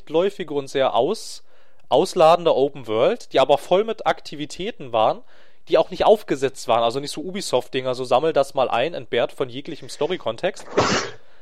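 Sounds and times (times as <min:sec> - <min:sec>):
speech: 0:00.1 - 0:11.2
sneeze: 0:10.6 - 0:11.2.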